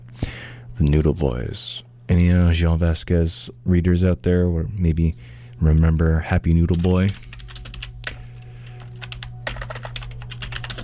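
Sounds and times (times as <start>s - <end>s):
low electrical hum: 0.0s - 10.8s
speech: 0.8s - 7.3s
typing on a computer keyboard: 6.7s - 10.8s.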